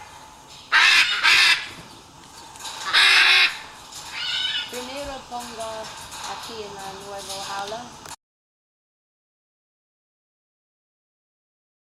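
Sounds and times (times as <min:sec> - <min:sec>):
Great green macaw Ara ambigua harsh squawks and honking calls: 0:00.7 - 0:01.8, 0:02.8 - 0:04.8.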